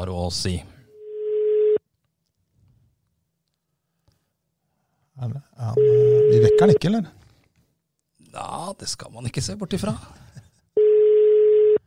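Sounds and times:
speech: 0.0 - 0.7, 5.2 - 7.2, 8.4 - 10.2
telephone call tone: 1.0 - 1.8, 5.8 - 6.8, 10.8 - 11.8.

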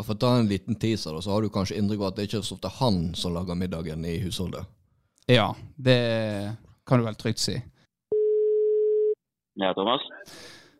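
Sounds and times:
speech: 0.0 - 7.7, 9.6 - 10.6
telephone ringback tone electronic beep: 8.1 - 9.2.

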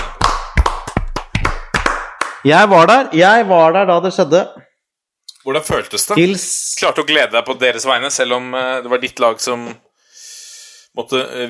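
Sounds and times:
hands clapping in a brief round of applause: 0.0 - 2.5
speech: 2.4 - 4.6, 5.4 - 9.8, 11.0 - 11.4.

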